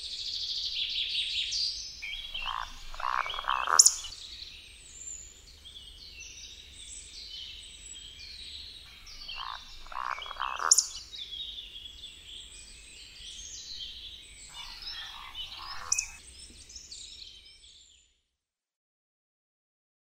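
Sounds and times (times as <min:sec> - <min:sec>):
other birds singing: 0:00.0 - 0:18.2
Eurasian woodcock grunting: 0:02.2 - 0:04.1, 0:09.1 - 0:10.9, 0:14.5 - 0:16.2.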